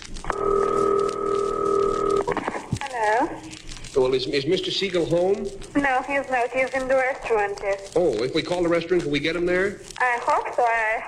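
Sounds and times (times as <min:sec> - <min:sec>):
buzzing telephone dial tone: 0:00.2 - 0:02.3
speech: 0:04.0 - 0:11.0.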